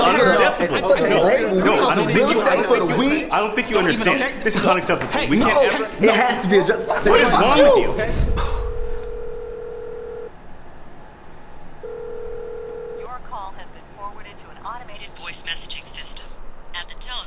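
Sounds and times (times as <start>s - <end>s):
speech: 0.5s - 8.5s
telephone ringback tone of an outgoing call: 8.6s - 10.3s, 11.8s - 13.1s.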